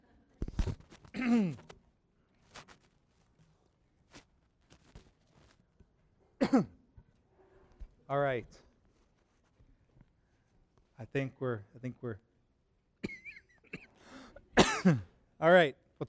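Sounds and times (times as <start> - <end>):
soft rustles: 0.4 - 6.2, 7.1 - 11.0
throat clearing away from the microphone: 1.1 - 1.7, 6.4 - 6.8, 13.0 - 14.0, 14.6 - 15.1
speech: 1.2 - 1.7, 6.5 - 6.8, 8.1 - 8.6, 11.0 - 12.3, 14.8 - 16.0
person breathing: 14.0 - 14.4.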